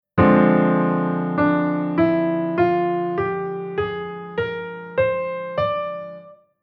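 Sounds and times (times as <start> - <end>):
chords: 0.2 - 6.4.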